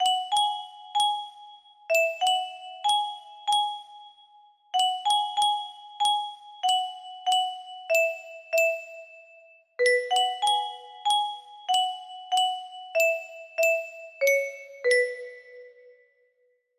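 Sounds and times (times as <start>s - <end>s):
music box melody: 0.0s - 16.0s.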